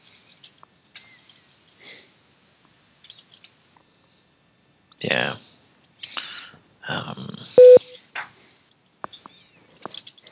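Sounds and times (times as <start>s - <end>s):
speech: 5.0s - 5.4s
electronic cell phone keypad tone: 7.6s - 7.8s
faint beeps: 7.6s - 8.0s.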